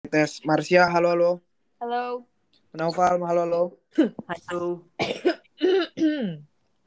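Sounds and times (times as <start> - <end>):
speech: 0.1 - 5.3, 6.0 - 6.5
person coughing: 5.0 - 6.4.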